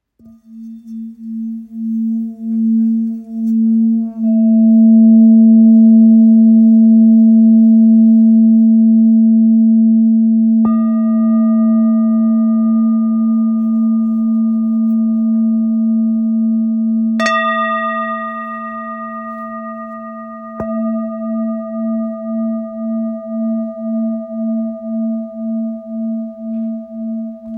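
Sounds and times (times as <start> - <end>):
full moon singing bowl 675g: 0.2 - 27.5.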